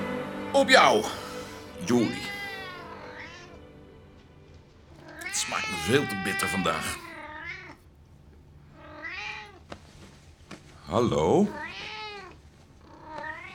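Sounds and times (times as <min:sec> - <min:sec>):
speech: 0:00.5 - 0:01.2, 0:01.8 - 0:02.4, 0:05.9 - 0:07.0, 0:10.9 - 0:11.9
cat meowing: 0:00.7 - 0:03.6, 0:05.0 - 0:07.8, 0:08.7 - 0:09.6, 0:11.5 - 0:13.5.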